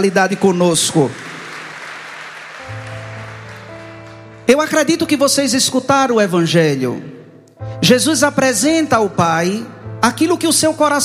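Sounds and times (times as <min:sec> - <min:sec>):
speech: 0:00.0 - 0:01.3, 0:04.5 - 0:07.2, 0:07.8 - 0:11.0
church congregation applauding: 0:00.0 - 0:05.6.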